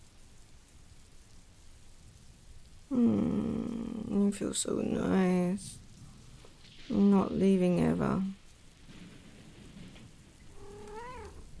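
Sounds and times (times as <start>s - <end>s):
steady rain-like noise: 0.0s - 11.5s
speech: 2.9s - 3.4s, 4.3s - 5.8s, 6.9s - 8.4s
cat meowing: 10.5s - 11.5s.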